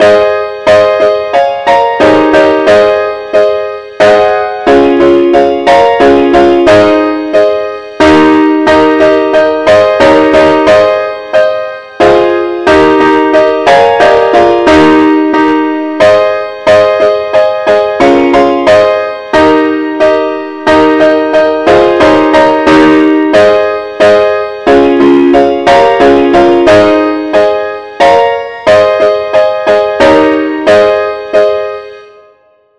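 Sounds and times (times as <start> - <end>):
chords: 0.0 - 32.7.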